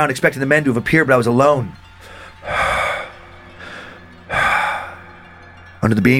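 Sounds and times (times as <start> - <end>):
speech: 0.0 - 2.6, 5.8 - 6.1
loud raspy wheezing breaths: 1.8 - 5.8.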